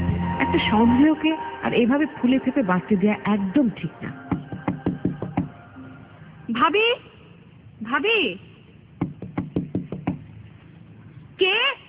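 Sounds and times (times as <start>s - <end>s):
speech: 0.5s - 4.2s, 6.5s - 7.1s, 7.8s - 8.5s
knocking on a bedroom door at home: 4.3s - 5.5s, 9.0s - 10.2s.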